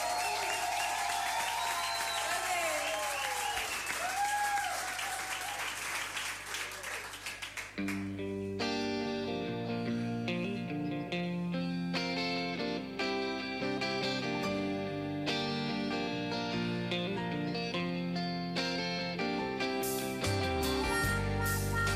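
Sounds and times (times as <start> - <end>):
audience applause for a performer at a live show: 0.0 - 8.2
music: 7.8 - 21.9.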